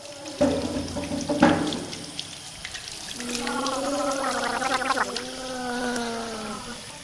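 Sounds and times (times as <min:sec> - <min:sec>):
water running from a tap: 0:00.0 - 0:07.0
children gargling with water: 0:03.1 - 0:07.0
children brushing teeth: 0:03.2 - 0:06.6.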